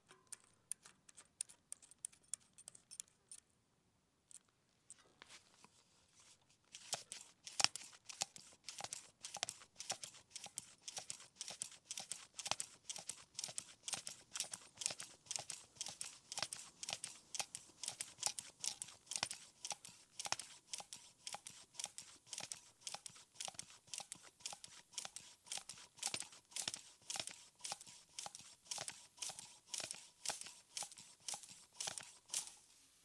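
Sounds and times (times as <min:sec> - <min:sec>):
hand bicycle pump pumping: 0:06.8 - 0:32.6.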